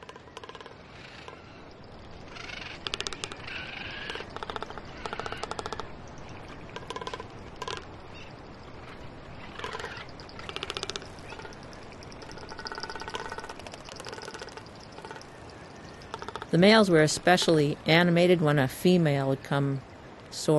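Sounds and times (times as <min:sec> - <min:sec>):
large bird rattling its bill in wooden clattering bursts: 0:00.0 - 0:01.4, 0:02.3 - 0:16.6
speech: 0:16.5 - 0:20.5.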